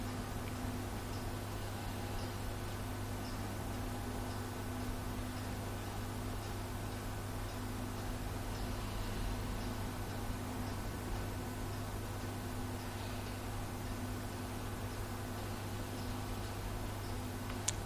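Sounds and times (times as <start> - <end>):
clock ticking: 0.0 - 17.8
constant low electrical hum: 0.0 - 17.8
soft hiss: 0.0 - 17.8.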